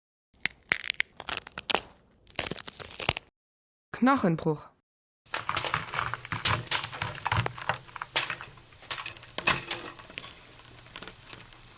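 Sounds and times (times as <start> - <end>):
celery being crunched: 0.4 - 3.3, 5.3 - 11.7
speech: 4.0 - 4.7.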